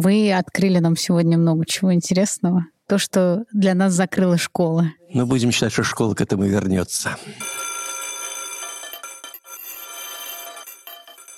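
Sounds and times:
speech: 0.0 - 7.6
electric school bell ringing: 7.4 - 11.3.

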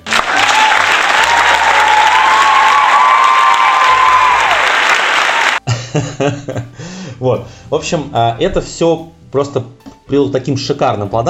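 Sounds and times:
faint cheers: 0.0 - 5.6
large crowd applauding: 0.0 - 5.6
laughter: 5.6 - 6.8
speech: 6.0 - 11.2.

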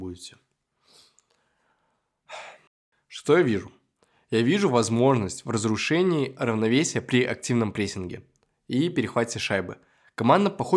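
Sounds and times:
speech: 0.0 - 1.0, 3.2 - 10.7
person yawning: 2.3 - 2.7.

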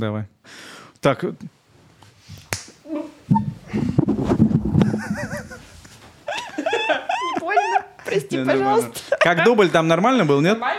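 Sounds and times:
speech: 0.0 - 1.6, 3.3 - 4.4, 8.1 - 10.7
single sharp hand slap for take sync: 2.5 - 2.8
laughter: 4.8 - 10.3.

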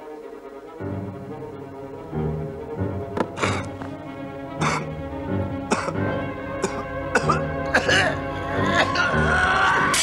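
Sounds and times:
steady low tone: 0.0 - 9.9
man choking and coughing in a film scene: 3.4 - 3.7, 4.6 - 4.9, 5.7 - 6.0, 6.6 - 9.4.

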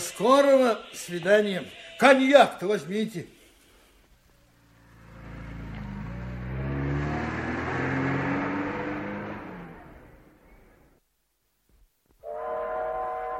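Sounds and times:
train pulling away with rumble and rising whine: 0.0 - 2.9, 4.6 - 10.4
speech: 0.2 - 3.4
loud horn-like tone: 12.2 - 13.3.

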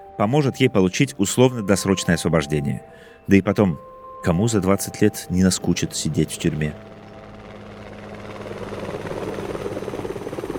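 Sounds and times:
speech: 0.2 - 7.0
helicopter flying with rotor chop: 6.3 - 10.5.

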